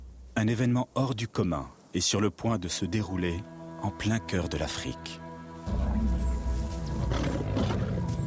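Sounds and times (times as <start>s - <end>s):
speech: 0.4s - 6.1s
lions roaring: 5.7s - 8.1s.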